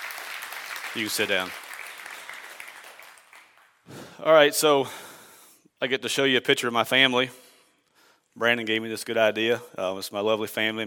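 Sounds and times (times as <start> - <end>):
audience applauding: 0.0 - 3.9
speech: 1.0 - 1.6, 4.2 - 5.1, 5.8 - 7.4, 8.4 - 10.8.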